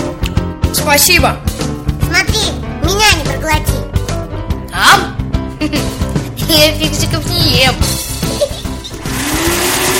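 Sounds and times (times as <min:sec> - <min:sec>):
speech: 0:00.8 - 0:03.9, 0:04.8 - 0:08.6
vacuum cleaner motor whining and roaring: 0:09.0 - 0:09.9.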